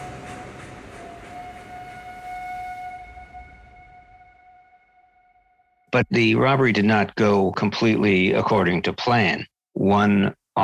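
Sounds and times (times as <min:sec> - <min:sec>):
train whistle echoing across farmland: 0:00.0 - 0:05.7
speech: 0:06.0 - 0:10.6.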